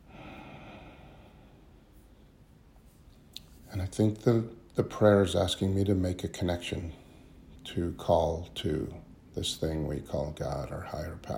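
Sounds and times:
slow breath drawn in during a quiet prayer meditation: 0.0 - 2.1
speech: 3.9 - 7.0, 7.7 - 11.3.

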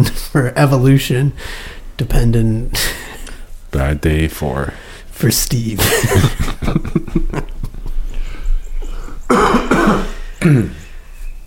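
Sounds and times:
speech: 0.0 - 3.1, 3.7 - 7.5, 9.3 - 10.8
laughter: 5.8 - 8.2
raspy cough: 9.3 - 10.9.

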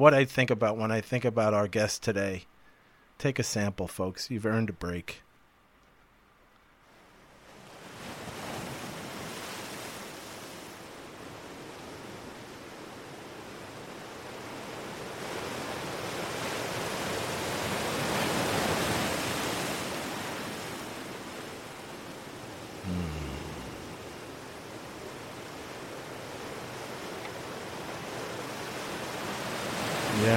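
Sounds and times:
speech: 0.0 - 2.5, 3.2 - 5.2
ocean waves washing onto a shore: 6.8 - 30.3.

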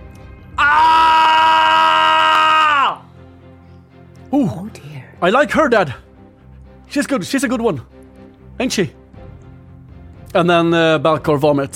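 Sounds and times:
person screaming a performed battle cry: 0.6 - 3.1
speech: 5.2 - 6.0, 6.9 - 8.0, 8.6 - 9.0, 10.3 - 11.7.

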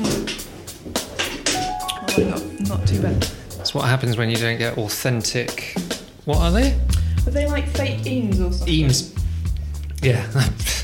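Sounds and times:
chair creaking and knocking: 0.0 - 3.4
speech: 2.2 - 9.2, 10.0 - 10.7.

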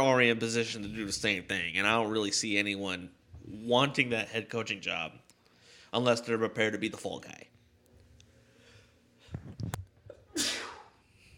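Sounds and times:
speech: 0.0 - 5.2, 5.9 - 7.5
person sneezing: 10.1 - 11.0.

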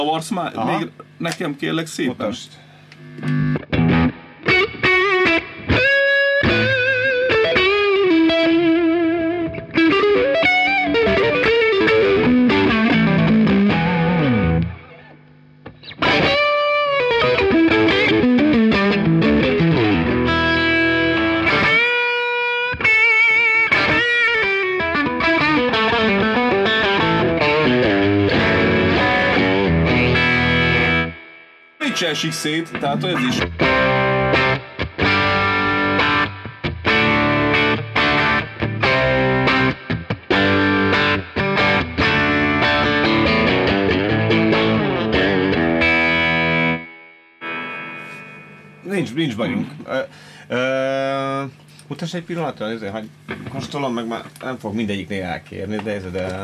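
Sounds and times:
speech: 0.0 - 3.4, 32.2 - 33.8, 49.2 - 50.6, 52.0 - 56.4
electric guitar through Tube Screamer overdrive pedal playing gritty chords and riffs: 2.5 - 51.8.

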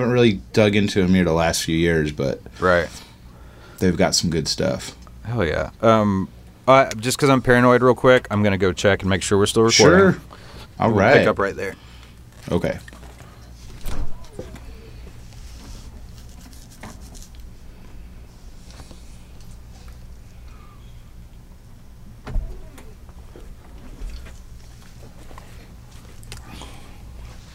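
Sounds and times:
speech: 0.0 - 3.0, 3.8 - 12.9
door opening and closing with clunks and latch clicks: 13.7 - 14.7, 22.2 - 24.2.

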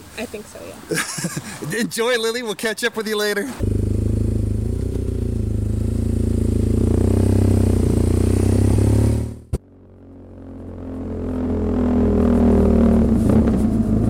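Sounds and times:
speech: 0.2 - 3.7
laughter: 0.9 - 2.1
BMW motorcycle engine revving and pulling away: 3.6 - 14.0.

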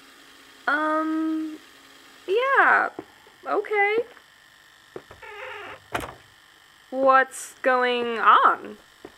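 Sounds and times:
speech: 0.7 - 1.4, 2.3 - 4.2, 6.9 - 8.9
small knocks: 4.9 - 6.3
door pulled along with a brief creaking, whirring glide: 5.0 - 6.3.

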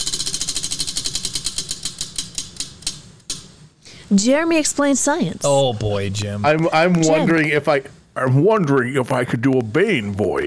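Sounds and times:
spinning wheel ticking: 0.0 - 3.5
speech: 4.1 - 10.4.

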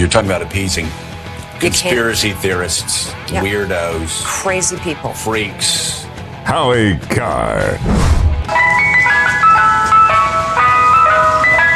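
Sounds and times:
speech: 0.0 - 8.7
tinny music-box style ice cream truck jingle: 8.5 - 11.7.

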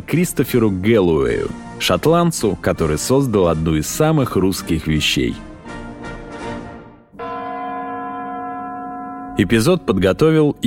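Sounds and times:
speech: 0.1 - 5.5, 9.4 - 10.6
tower clock bells chiming in the New Year: 7.2 - 10.6.

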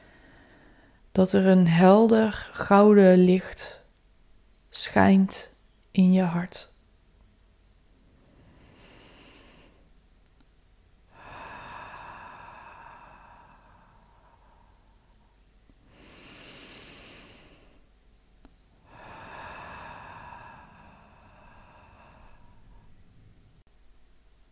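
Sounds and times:
slow deep breaths in and out: 0.0 - 1.1, 8.1 - 10.0, 11.1 - 17.9, 18.8 - 23.3
speech: 1.2 - 3.8, 4.8 - 6.7.

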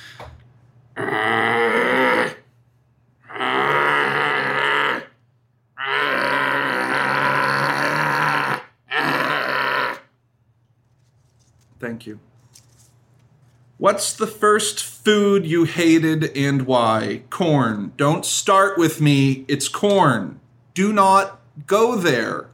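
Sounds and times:
person voicing gravelly bear-walrus monster grunts: 1.0 - 2.4, 5.8 - 10.0
person voicing bear-walrus monster roar: 1.0 - 2.5, 3.3 - 5.2, 5.8 - 10.1
speech: 11.9 - 12.6, 13.8 - 22.5.

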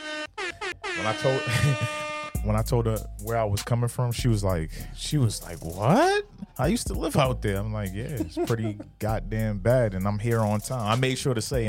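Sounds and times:
air horn blasts: 0.0 - 2.4
speech: 1.0 - 11.6
laughter: 1.4 - 2.1, 8.0 - 9.2.

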